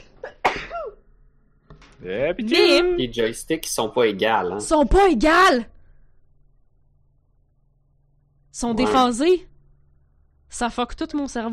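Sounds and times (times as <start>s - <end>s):
sharp explosive sneeze: 0.2s - 1.0s
speech: 2.0s - 5.7s, 8.6s - 9.5s, 10.5s - 11.5s.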